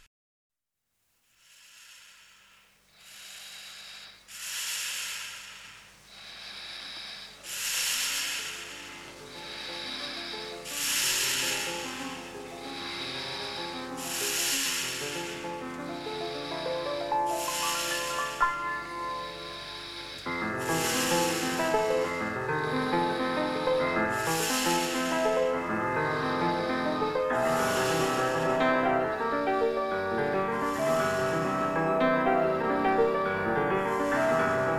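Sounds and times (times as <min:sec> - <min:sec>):
recorded snoring used as rhythm in music: 0:01.3 - 0:34.7
sustained tonal drone: 0:16.8 - 0:34.7.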